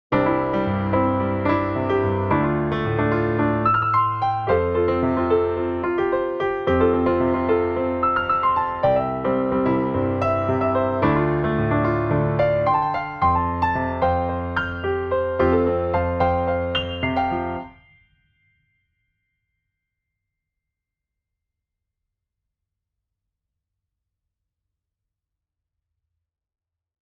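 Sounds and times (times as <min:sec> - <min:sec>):
solo studio piano: 0:00.1 - 0:17.9.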